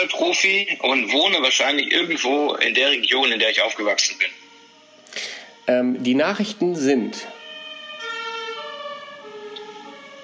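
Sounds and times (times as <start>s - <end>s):
speech: 0.0s - 4.4s, 5.7s - 7.4s
emergency vehicle siren wailing: 1.6s - 10.2s
faint rumble of road traffic: 7.3s - 10.2s.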